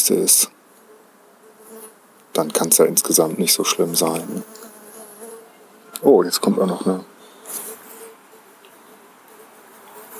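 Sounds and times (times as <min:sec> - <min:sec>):
speech: 0:00.0 - 0:00.6, 0:02.4 - 0:04.7, 0:06.0 - 0:07.6
faint high-pitched outdoor background: 0:00.0 - 0:10.1
wasp buzzing: 0:00.8 - 0:06.0, 0:07.2 - 0:10.1.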